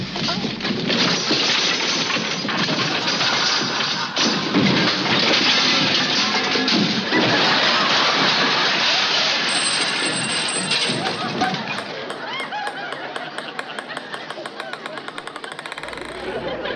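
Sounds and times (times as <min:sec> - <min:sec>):
junk crashing out of an overstuffed closet: 0:00.0 - 0:11.6
laughter: 0:02.5 - 0:05.0, 0:07.0 - 0:16.7
lighter rattles and tinkling jingles: 0:09.5 - 0:13.8.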